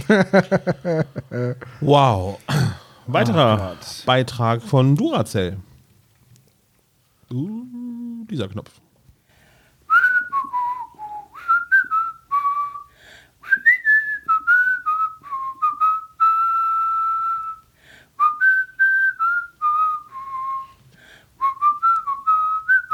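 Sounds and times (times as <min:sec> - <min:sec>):
laughter: 0:00.0 - 0:01.7, 0:03.1 - 0:03.8
speech: 0:00.1 - 0:05.7, 0:07.3 - 0:08.8
person whistling a lively melody: 0:09.9 - 0:20.8, 0:21.4 - 0:22.9.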